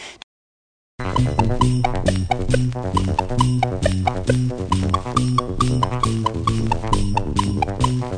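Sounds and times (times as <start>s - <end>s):
song: 1.0s - 8.1s.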